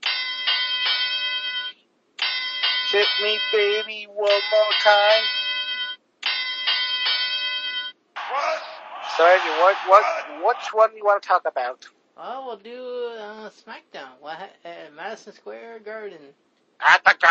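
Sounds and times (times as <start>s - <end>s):
wrestling ring bell clanging: 0.0s - 8.0s
speech: 2.9s - 5.4s, 9.2s - 17.2s.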